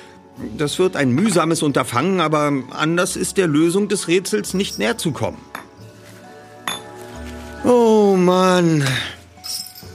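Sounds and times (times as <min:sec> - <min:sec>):
speech: 0:00.4 - 0:05.6, 0:07.6 - 0:09.1
loose shards of broken glass clinking together: 0:09.4 - 0:09.9.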